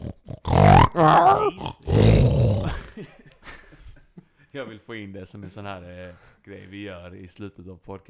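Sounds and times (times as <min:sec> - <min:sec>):
several people imitating pig grunts and snorts: 0:00.0 - 0:03.0
speech: 0:01.0 - 0:02.4, 0:04.5 - 0:08.0.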